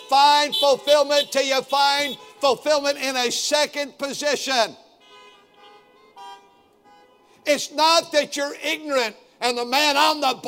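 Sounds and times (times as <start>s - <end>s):
car horn blaring: 0.0s - 2.7s, 4.9s - 7.6s
speech: 0.1s - 4.8s, 7.4s - 10.4s.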